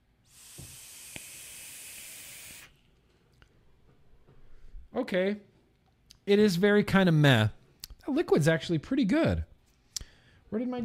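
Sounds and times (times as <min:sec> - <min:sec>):
0.344 vape coil in an RDA firing at 55 watts during an inhale: 0:00.2 - 0:02.8
speech: 0:05.0 - 0:05.5, 0:06.3 - 0:09.5, 0:10.5 - 0:10.8.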